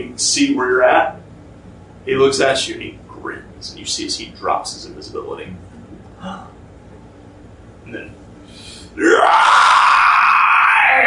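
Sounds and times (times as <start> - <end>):
speech: 0.0 - 1.2, 2.0 - 6.5, 7.9 - 8.2, 9.0 - 9.6
voice imitating a monster's shriek: 9.0 - 11.0.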